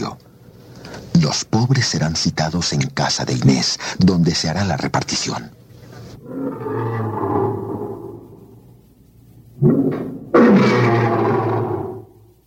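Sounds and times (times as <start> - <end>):
speech: 0.0 - 0.2, 1.0 - 5.6
lions roaring: 6.2 - 8.6, 9.6 - 12.2.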